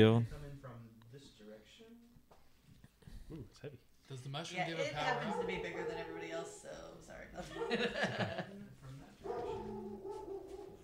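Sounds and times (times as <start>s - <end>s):
speech: 0.0s - 0.4s, 3.3s - 9.9s
female dog barking and yipping: 5.0s - 6.6s, 7.4s - 8.0s, 9.2s - 10.8s
laughter: 7.4s - 8.7s.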